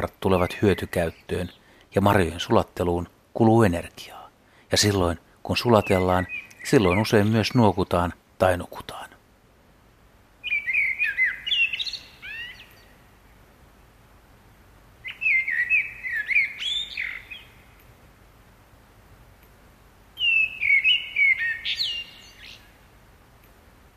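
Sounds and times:
common blackbird singing: 0.0s - 2.6s, 4.8s - 8.0s, 10.4s - 13.0s, 15.0s - 17.8s, 20.2s - 22.8s
speech: 0.0s - 9.1s.

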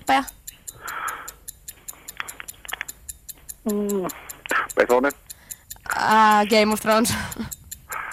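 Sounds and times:
quiz game timer clock ticking: 0.0s - 8.1s
speech: 0.1s - 0.4s, 3.6s - 5.2s, 6.0s - 7.6s.

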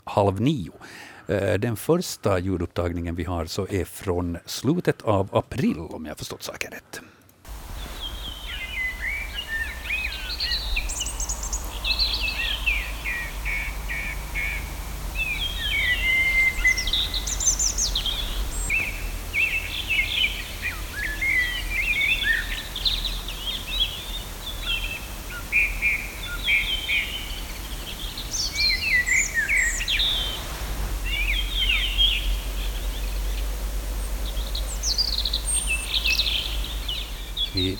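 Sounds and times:
speech: 0.1s - 7.2s
steady low hum: 7.5s - 37.7s
evening chorus of mixed birdsong: 7.6s - 37.7s.

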